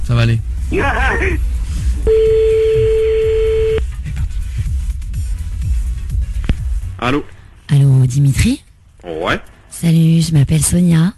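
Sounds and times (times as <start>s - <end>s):
noise: 0.0s - 11.1s
speech: 0.1s - 2.7s, 7.0s - 11.1s
steady medium-pitched telephone line tone while placing a call: 2.1s - 3.8s.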